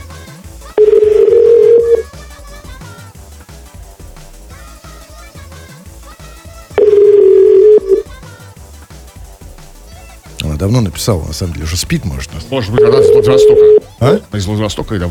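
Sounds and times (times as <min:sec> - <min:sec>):
telephone ringback tone: 0:00.8 - 0:02.0, 0:06.8 - 0:08.0, 0:12.8 - 0:13.8
speech: 0:10.6 - 0:15.0.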